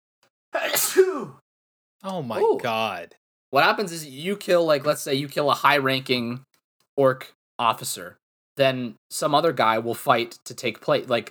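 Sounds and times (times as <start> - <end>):
speech: 0.5 - 1.4, 2.0 - 11.2
loud sneeze: 0.6 - 1.4.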